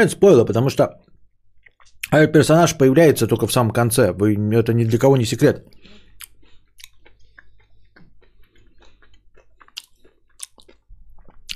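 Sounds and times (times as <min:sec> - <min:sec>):
speech: 0:00.0 - 0:01.1, 0:02.1 - 0:06.3
loud chewing with wet smacking and crunching mouth noises: 0:05.7 - 0:11.5.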